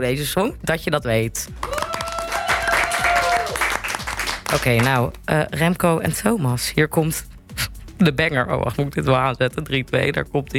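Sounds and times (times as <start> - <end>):
speech: 0.0 - 1.8, 4.5 - 7.3, 8.0 - 10.5
small group applauding in a radio studio: 1.5 - 5.3.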